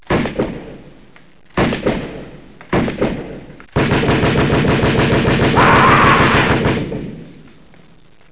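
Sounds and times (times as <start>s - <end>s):
gunshot: 0.1s - 0.8s, 1.6s - 7.2s.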